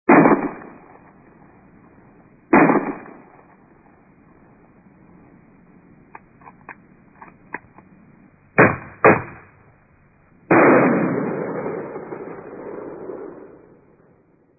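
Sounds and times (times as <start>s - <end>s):
pistol shots: 0.1s - 1.2s, 2.5s - 3.6s, 8.6s - 9.6s, 10.5s - 13.8s.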